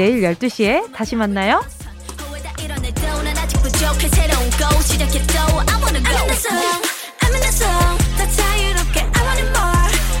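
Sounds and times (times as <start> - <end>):
speech: 0.0 - 1.8, 4.5 - 9.5
loud upbeat K-pop intro with heavy bass and synth melody: 1.0 - 10.1.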